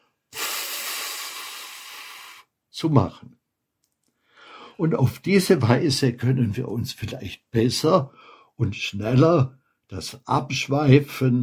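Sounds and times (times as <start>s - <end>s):
audible breathing out during a breathing exercise: 0.0s - 2.5s, 4.2s - 4.8s
speech: 2.8s - 3.4s, 4.8s - 11.4s.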